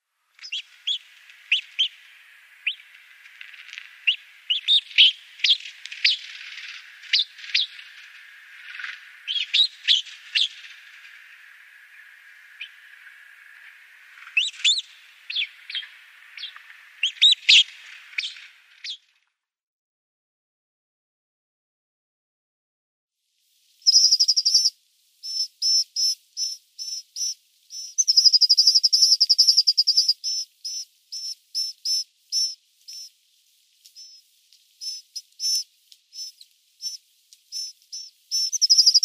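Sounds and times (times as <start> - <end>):
Sinai Rosefinch calls: 0.4 - 13.1, 14.1 - 19.0, 23.9 - 33.1, 34.8 - 35.6, 36.2 - 39.0.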